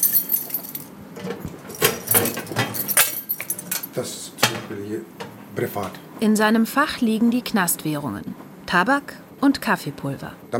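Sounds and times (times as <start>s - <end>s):
bunch of keys jangling: 0.0s - 0.9s, 1.7s - 4.0s
speech: 4.0s - 10.5s.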